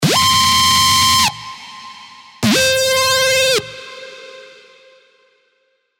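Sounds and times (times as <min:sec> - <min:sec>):
screechy synth lead: 0:00.0 - 0:04.6.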